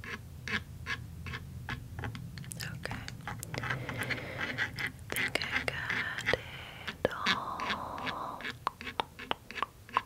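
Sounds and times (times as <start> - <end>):
low steady hum: 0.0 - 10.0
crisp mouth sounds and wet clicks of a spa lip treatment: 2.1 - 10.0.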